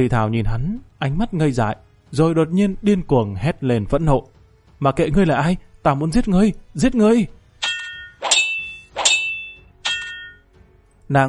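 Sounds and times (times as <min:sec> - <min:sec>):
speech: 0:00.0 - 0:07.4, 0:11.1 - 0:11.2
sabers clanging as their blades strike in a fight: 0:07.6 - 0:10.4.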